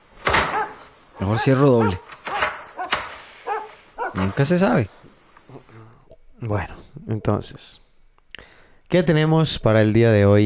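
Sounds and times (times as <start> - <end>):
dogs barking: 0.3 - 4.8
speech: 1.2 - 2.1, 4.2 - 5.1, 6.4 - 7.8, 8.9 - 10.4.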